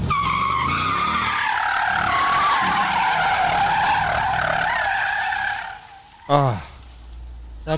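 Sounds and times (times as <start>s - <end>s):
heavy Jeep tires squealing in a skid: 0.0s - 7.0s
speech: 6.3s - 6.7s.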